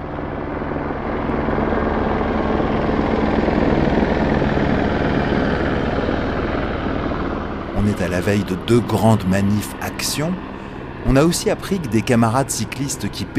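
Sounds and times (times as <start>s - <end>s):
gendarmerie helicopter rotor thudding: 0.1s - 13.3s
speech: 8.2s - 13.3s.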